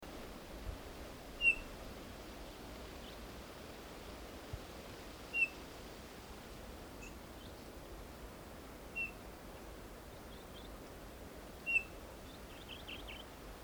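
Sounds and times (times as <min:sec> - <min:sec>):
steady hiss: 0:00.1 - 0:13.6
Eurasian bullfinch Pyrrhula pyrrhula piping whistles: 0:01.4 - 0:01.7, 0:05.3 - 0:05.5, 0:09.0 - 0:09.2, 0:11.7 - 0:11.9.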